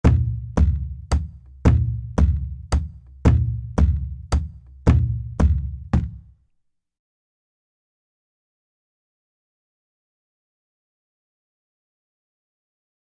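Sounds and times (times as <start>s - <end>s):
roda rhythm: 0.0s - 6.3s.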